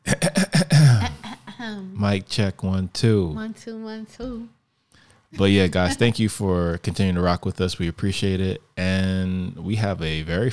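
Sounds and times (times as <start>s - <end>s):
person clearing their throat: 0.0s - 1.2s
speech: 1.6s - 4.6s, 5.3s - 10.5s.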